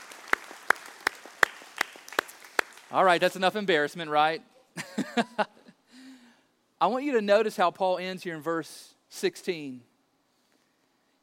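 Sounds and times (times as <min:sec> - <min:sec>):
audience applause for graduates' parents: 0:00.0 - 0:03.0
speech: 0:02.9 - 0:05.5, 0:06.8 - 0:09.9.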